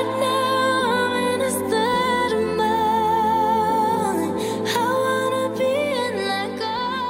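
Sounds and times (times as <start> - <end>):
opening of a pop ballad with sustained harmonic instrumentation: 0.0 - 7.0.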